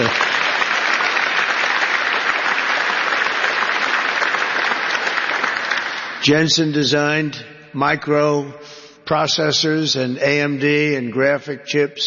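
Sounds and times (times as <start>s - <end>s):
large audience applauding: 0.0s - 6.3s
speech: 6.3s - 12.0s.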